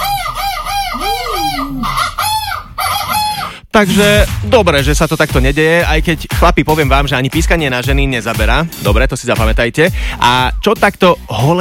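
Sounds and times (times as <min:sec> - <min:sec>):
rooster crowing as a sound effect: 0:00.0 - 0:03.5
speech: 0:03.8 - 0:11.5.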